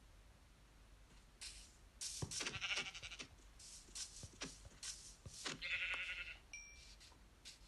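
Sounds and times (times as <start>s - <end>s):
rustling: 1.1s - 7.6s
soft shuffling steps: 1.1s - 7.6s
video game sheep bleating: 2.4s - 3.3s, 5.5s - 6.4s.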